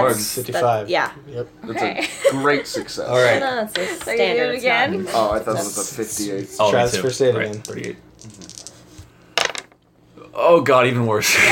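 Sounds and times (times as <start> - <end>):
speech: 0.0 - 8.6, 10.4 - 11.5
dice tumbling on a hard tabletop: 7.3 - 9.8.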